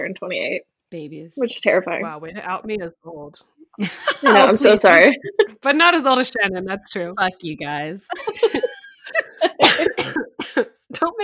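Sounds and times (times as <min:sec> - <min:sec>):
speech: 0:00.0 - 0:08.7, 0:09.6 - 0:11.2
laughter: 0:03.8 - 0:05.6, 0:08.1 - 0:10.0
person coughing: 0:08.1 - 0:10.8.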